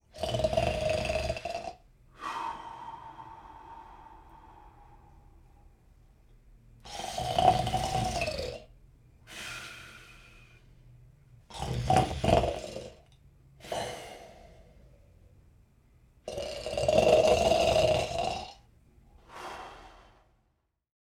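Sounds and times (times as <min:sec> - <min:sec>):
man snoring: 0:00.1 - 0:04.2, 0:06.9 - 0:08.7, 0:11.5 - 0:13.0, 0:13.6 - 0:14.8, 0:16.3 - 0:18.6, 0:19.2 - 0:20.2.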